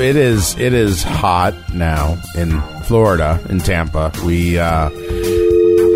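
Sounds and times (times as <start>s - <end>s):
speech: 0.0s - 5.2s
telephone dial tone: 5.0s - 5.9s.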